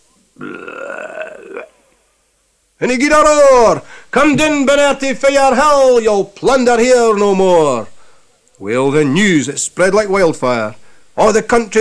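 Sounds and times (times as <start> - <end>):
speech: 0.4 - 0.8, 2.8 - 7.9, 8.6 - 11.7
long loud belch: 0.4 - 2.1.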